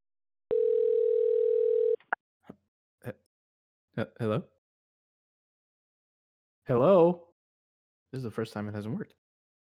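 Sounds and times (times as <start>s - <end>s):
steady electronic telephone ringing tone over a phone line: 0.5s - 2.1s
speech: 3.0s - 3.2s, 4.0s - 4.6s, 6.7s - 7.2s, 8.1s - 9.2s.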